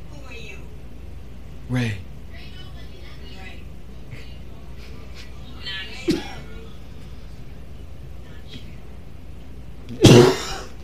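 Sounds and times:
quiet room murmur: 0:00.0 - 0:10.8
speech: 0:01.7 - 0:02.1
person coughing: 0:06.1 - 0:06.5, 0:09.9 - 0:10.8.

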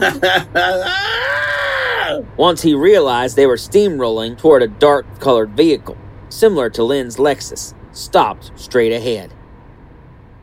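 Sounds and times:
speech: 0:00.0 - 0:01.3, 0:02.1 - 0:09.4
man laughing: 0:00.0 - 0:02.2
high-pitched feminine shriek: 0:00.6 - 0:02.2.

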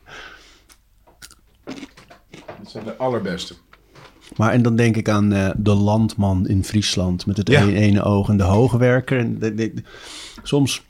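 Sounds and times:
crunchy chewing of a French cornichon pickle: 0:01.2 - 0:02.6
speech: 0:02.8 - 0:03.7, 0:04.3 - 0:10.8.

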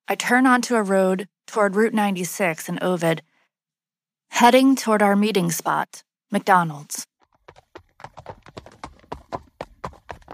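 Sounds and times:
speech: 0:00.1 - 0:03.3, 0:04.3 - 0:07.1
horse-drawn buggy hooves clip-clopping on a hard country road: 0:07.2 - 0:10.3.

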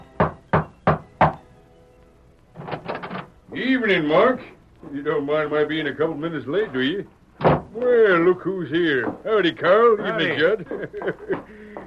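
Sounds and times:
knocking on a wooden ranch house door: 0:00.2 - 0:01.4, 0:07.4 - 0:07.7
speech: 0:03.6 - 0:11.5
laughter: 0:09.9 - 0:11.8.

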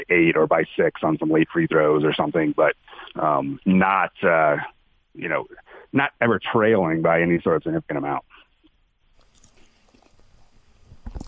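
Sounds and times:
speech: 0:00.0 - 0:08.3
person chewing and swallowing food: 0:09.2 - 0:11.2.

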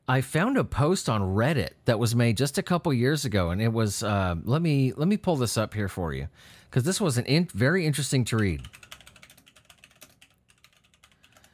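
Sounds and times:
speech: 0:00.1 - 0:08.9
typing on a computer keyboard: 0:08.3 - 0:11.5.

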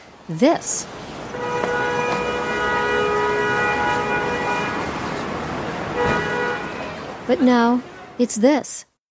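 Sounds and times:
busy New York City street traffic roar: 0:00.0 - 0:09.0
speech: 0:00.3 - 0:01.8, 0:07.3 - 0:08.9
sustained horn or siren tone blaring: 0:01.3 - 0:05.1, 0:05.9 - 0:07.0
sharp knocks and clanks: 0:01.6 - 0:02.5, 0:06.0 - 0:06.3.

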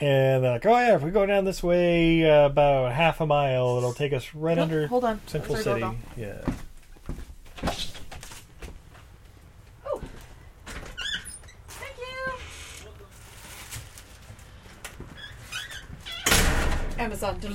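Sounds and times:
speech: 0:00.0 - 0:07.8, 0:17.1 - 0:17.5
squeaky door creaking open and shut: 0:10.7 - 0:13.1, 0:15.2 - 0:16.8.

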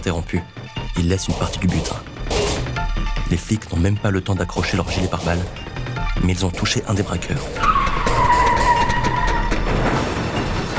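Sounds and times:
speech: 0:00.0 - 0:07.8
car tires screeching during a getaway on a country road: 0:06.9 - 0:10.4.

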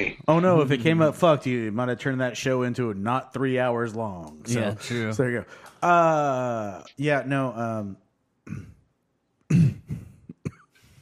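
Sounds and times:
speech: 0:00.0 - 0:08.7
person making short sharp coughs: 0:08.5 - 0:08.8, 0:09.5 - 0:10.8
person making voiced throat-clearing sounds: 0:08.5 - 0:08.8, 0:09.5 - 0:10.8.

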